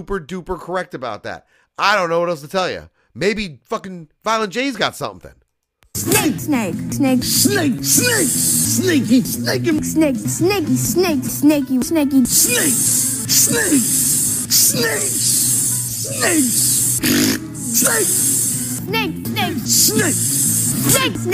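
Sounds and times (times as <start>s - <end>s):
speech: 0.0s - 5.4s, 6.0s - 15.4s, 16.1s - 21.3s
steady noise: 0.0s - 6.0s
voice imitating a snake hiss: 6.0s - 11.4s, 12.2s - 21.3s.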